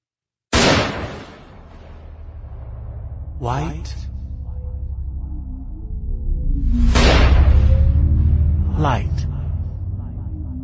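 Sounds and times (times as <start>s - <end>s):
concussion grenade detonating in weightlessness: 0.6s - 2.1s
low steady rumble: 1.9s - 10.6s
speech: 3.4s - 4.1s, 8.8s - 9.3s.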